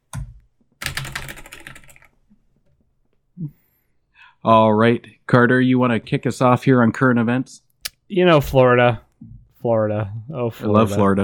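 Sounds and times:
computer keyboard typing as a stand-in for a typewriter: 0.1s - 2.1s
speech: 4.4s - 11.2s.

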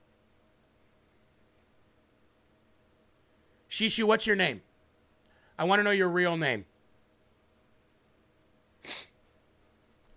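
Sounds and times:
faint hum: 0.0s - 10.1s
speech: 3.8s - 4.7s, 5.6s - 6.7s
nasal sniff: 8.8s - 9.2s.

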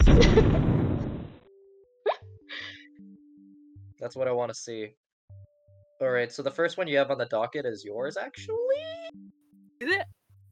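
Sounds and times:
loud rumbling explosion effect: 0.0s - 1.4s
speech: 4.0s - 5.0s, 6.0s - 10.2s.

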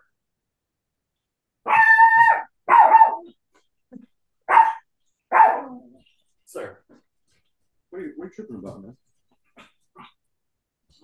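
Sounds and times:
dog barking: 1.6s - 3.4s, 4.5s - 5.9s
speech: 8.3s - 9.1s.

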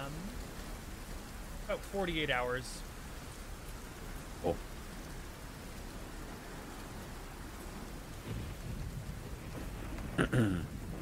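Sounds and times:
rain hiss during a thunder storm: 0.0s - 10.9s
speech: 1.7s - 2.9s, 4.4s - 4.7s, 10.3s - 10.7s
thunder: 8.1s - 10.9s.

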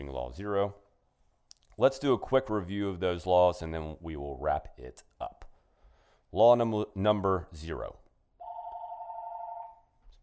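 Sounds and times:
speech: 0.0s - 0.8s, 1.8s - 5.4s, 6.3s - 8.0s
telephone ringing: 8.4s - 10.0s.

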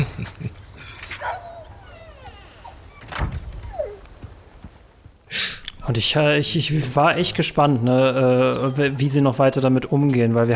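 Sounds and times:
dog whining in high wavering cries in a garden: 1.1s - 4.1s, 7.3s - 9.4s
speech: 5.9s - 10.5s.

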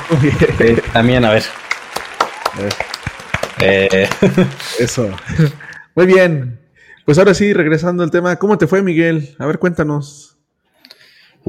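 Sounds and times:
short burst of sharp irregular claps: 0.0s - 5.8s
speech: 0.1s - 1.6s, 2.6s - 2.9s, 3.6s - 10.4s
laughter: 2.6s - 5.8s.

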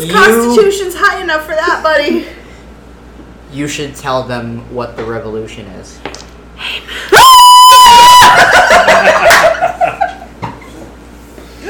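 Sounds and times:
speech: 0.0s - 2.4s, 3.5s - 6.9s
person imitating a hog's scream: 7.1s - 8.4s
laughter: 7.9s - 10.3s.

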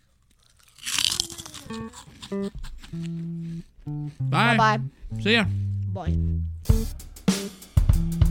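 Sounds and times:
crunch of someone biting into a shrimp chip: 0.0s - 3.8s
speech: 1.7s - 8.2s
short steady humming tones: 2.9s - 6.6s.

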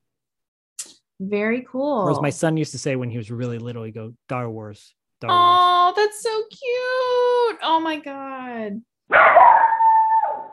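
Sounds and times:
speech: 1.2s - 9.6s
dog barking: 9.1s - 10.5s.

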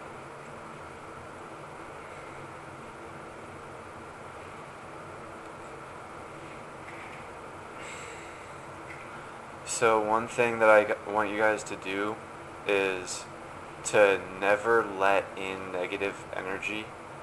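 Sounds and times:
deep breath in and out: 7.8s - 9.5s
speech: 9.8s - 17.0s.

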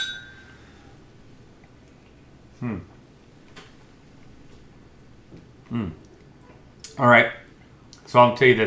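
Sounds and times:
whiskey glasses clinking in a toast: 0.0s - 0.6s
speech: 2.6s - 2.9s, 5.7s - 6.0s, 7.0s - 7.4s, 8.1s - 8.6s.

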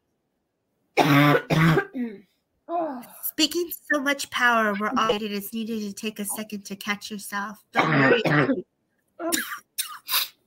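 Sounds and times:
raspy coughing from a person: 1.0s - 2.2s, 7.8s - 8.6s, 9.2s - 10.3s
speech: 3.4s - 9.6s.

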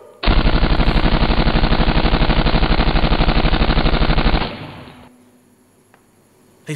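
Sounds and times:
dramatized automatic machine-gun burst in a shootout scene: 0.2s - 5.1s.

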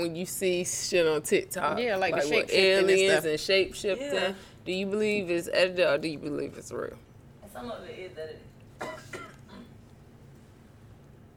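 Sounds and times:
speech: 0.0s - 9.0s
person coughing: 8.8s - 9.8s.

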